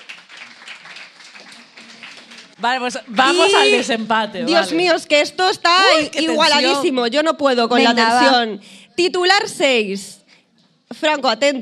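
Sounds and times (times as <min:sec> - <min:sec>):
audience applauding: 0:00.0 - 0:03.9
speech: 0:02.6 - 0:10.2, 0:10.9 - 0:11.5.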